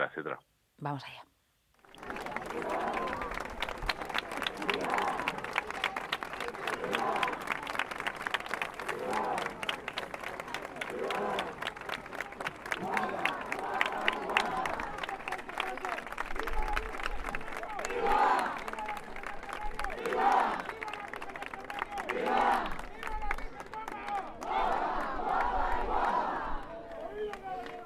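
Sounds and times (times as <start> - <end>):
speech: 0.0 - 1.3
crowd cheering: 1.8 - 27.8
steady rhythmic clapping: 1.9 - 24.5.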